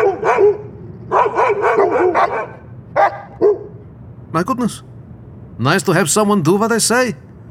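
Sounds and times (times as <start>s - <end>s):
dogs barking: 0.0s - 3.8s
speech: 4.4s - 4.9s, 5.6s - 7.3s.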